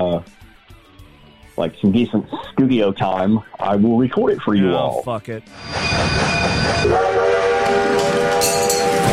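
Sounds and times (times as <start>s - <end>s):
speech: 0.2s - 0.4s, 1.6s - 7.2s
rumbling rail noise: 5.6s - 9.1s
train whistle: 5.6s - 9.1s.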